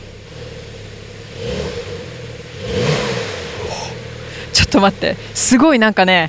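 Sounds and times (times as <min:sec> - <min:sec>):
sports car engine revving and idling: 0:00.0 - 0:06.2
speech: 0:04.7 - 0:06.2.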